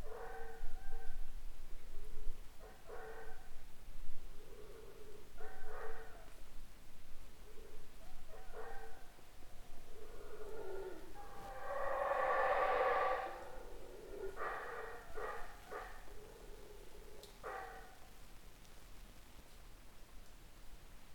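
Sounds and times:
howler monkey roaring and grunting: 0:08.4 - 0:17.3.

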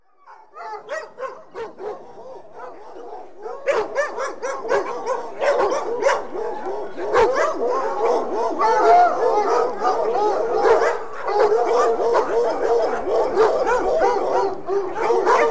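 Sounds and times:
pack of dogs barking in a group: 0:00.1 - 0:15.4.

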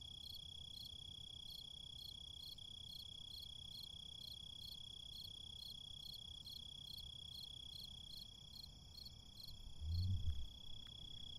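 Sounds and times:
crickets chirping in a city: 0:00.2 - 0:11.3
steady low background rumble: 0:09.6 - 0:10.8.

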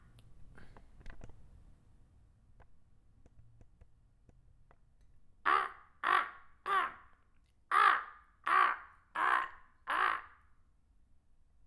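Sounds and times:
crow cawing: 0:05.5 - 0:07.1, 0:07.7 - 0:10.5.

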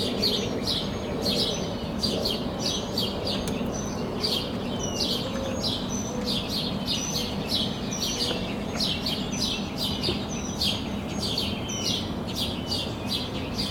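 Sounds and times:
birds chirping in chorus at sunrise: 0:00.0 - 0:13.6
steady low rumbling background hum: 0:00.0 - 0:13.6.

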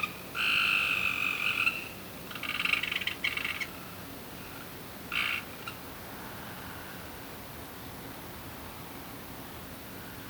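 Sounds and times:
frog croaks: 0:00.0 - 0:03.7, 0:05.1 - 0:05.8
faint background hiss: 0:00.0 - 0:10.2.

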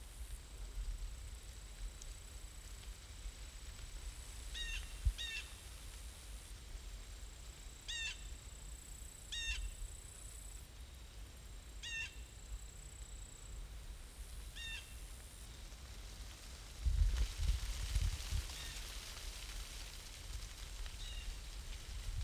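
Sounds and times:
crickets giving steady high-pitched insect drone: 0:00.0 - 0:22.2
wind rumbling through autumn leaves: 0:00.0 - 0:22.2
blue jay giving harsh jay calls: 0:04.6 - 0:05.5, 0:07.9 - 0:08.3, 0:09.3 - 0:09.7, 0:11.8 - 0:12.2, 0:14.6 - 0:15.0.

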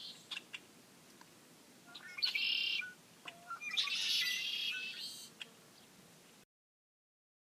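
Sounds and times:
red-winged blackbirds calling: 0:00.0 - 0:00.8, 0:01.8 - 0:06.4
quiet background hiss: 0:00.0 - 0:06.4.

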